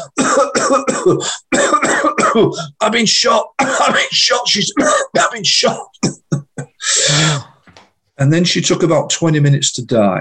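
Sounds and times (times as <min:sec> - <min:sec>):
speech: 0:00.0 - 0:01.7, 0:02.3 - 0:07.5, 0:08.2 - 0:10.2
voice imitating harsh coughing and choking: 0:00.0 - 0:02.8, 0:03.4 - 0:07.5.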